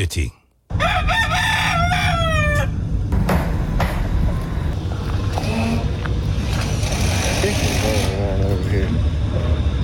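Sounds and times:
speech: 0.0s - 0.4s
rooster crowing: 0.7s - 2.9s
outdoor rumble of passing traffic: 2.6s - 9.8s.

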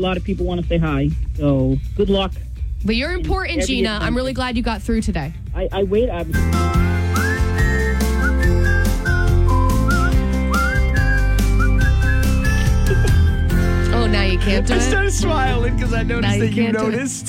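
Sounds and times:
speech: 0.0s - 6.9s, 14.4s - 17.2s
music: 0.0s - 17.2s
person whistling a lilting tune: 6.9s - 13.5s.

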